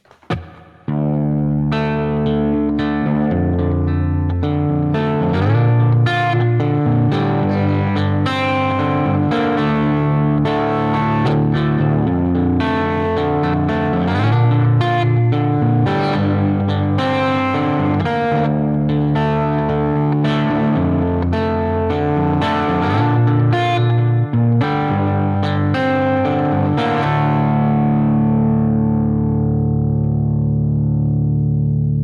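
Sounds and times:
clean electric guitar with flatwound strings through amp preset with reverb playing chords: 0.0s - 32.0s.

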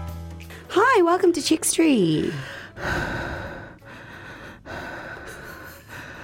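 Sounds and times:
speech: 1.0s - 3.1s
heavy breathing into a microphone: 2.3s - 6.2s.

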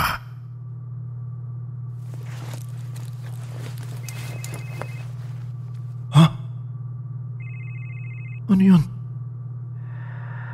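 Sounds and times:
low constant hum: 0.0s - 10.5s
old-style cellphone ringtone: 7.4s - 8.5s
speech: 8.6s - 8.9s.

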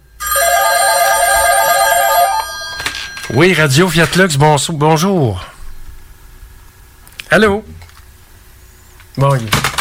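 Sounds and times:
telephone bell at a radio station ringing in a metallic trill: 0.2s - 3.8s
speech: 3.3s - 5.5s, 7.3s - 7.8s, 9.2s - 9.7s.

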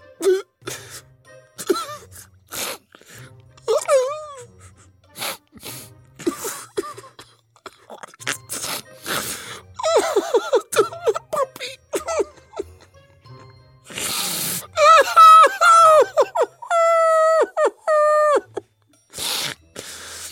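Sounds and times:
person performing exaggerated crying with wails and sobs: 1.6s - 2.8s, 3.6s - 4.9s, 6.2s - 9.0s, 9.7s - 13.5s, 14.7s - 18.6s.

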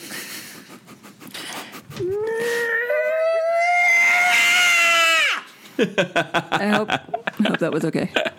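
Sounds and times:
person imitating a curdling scream of pain: 2.1s - 5.5s
laughter: 5.8s - 8.3s
speech: 5.8s - 8.3s.

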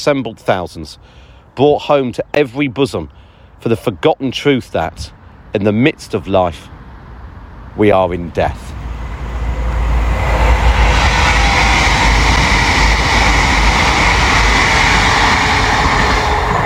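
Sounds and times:
speech: 0.0s - 6.8s, 7.8s - 8.8s
train rumbling past: 7.0s - 16.6s
train wheel hiss: 8.7s - 16.6s.

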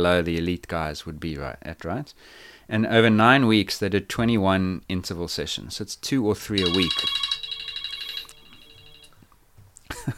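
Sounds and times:
speech: 0.0s - 7.3s
mobile phone ringtone with high-pitched electronic warble: 6.6s - 9.2s.

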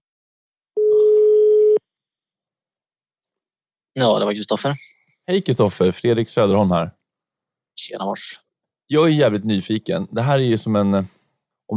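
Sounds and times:
telephone ringing tone before a call is answered: 0.8s - 1.8s
speech: 4.0s - 7.0s, 7.8s - 11.7s.

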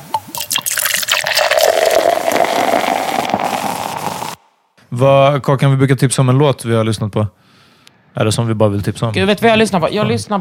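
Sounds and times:
hands being washed under a running tap: 0.3s - 4.4s
speech: 5.0s - 7.6s, 8.2s - 10.3s.

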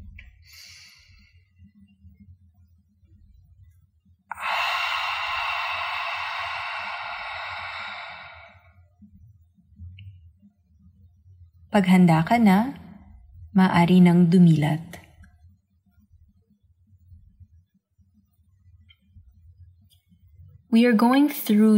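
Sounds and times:
faint low hum: 0.0s - 21.7s
deep breathing exercise exhale through the mouth: 4.3s - 8.7s
speech: 11.8s - 12.8s, 13.6s - 15.0s, 20.8s - 21.7s.

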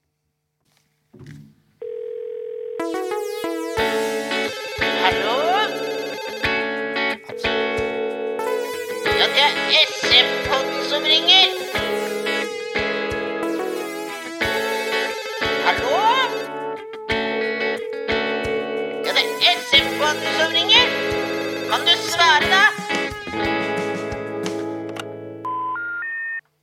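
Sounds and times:
ringtone-like bursts suggesting a telephone ringing: 2.8s - 16.6s, 17.7s - 22.9s
bright processed Norwegian radio jingle with electronic tones: 2.8s - 24.5s
sustained note: 2.9s - 24.8s.

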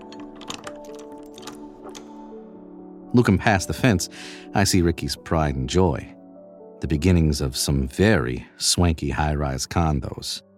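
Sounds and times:
keys clinking against a padlock: 0.0s - 2.2s
speech: 3.1s - 6.2s, 6.8s - 10.5s.

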